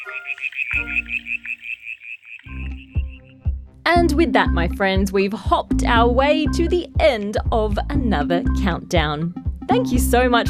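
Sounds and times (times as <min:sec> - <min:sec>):
speech: 0:00.0 - 0:01.8, 0:03.9 - 0:10.4
brown tree frog calling with high pulsing trill: 0:00.0 - 0:03.4.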